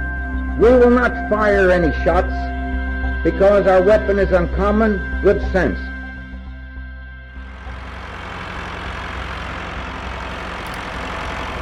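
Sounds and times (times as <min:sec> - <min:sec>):
speech: 0:00.6 - 0:02.6, 0:03.2 - 0:05.9
tractor engine idling: 0:07.5 - 0:11.6.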